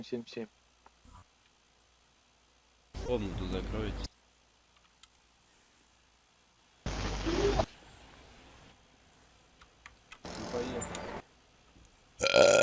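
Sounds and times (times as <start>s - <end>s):
speech: 0.0s - 0.6s, 3.1s - 4.1s
faint clicks: 4.1s - 5.2s, 9.5s - 11.1s
loud burp: 12.2s - 12.6s.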